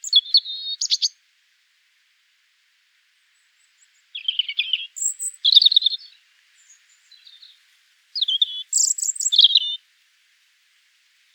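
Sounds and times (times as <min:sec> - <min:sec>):
European Robin singing Erithacus rubecula: 0:00.0 - 0:01.2, 0:03.3 - 0:07.6, 0:08.2 - 0:09.8.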